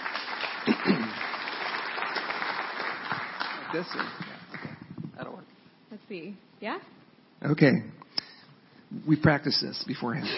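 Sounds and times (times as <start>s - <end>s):
audience applause: 0.0s - 4.9s
speech: 3.7s - 4.2s, 6.1s - 8.0s, 8.9s - 10.3s.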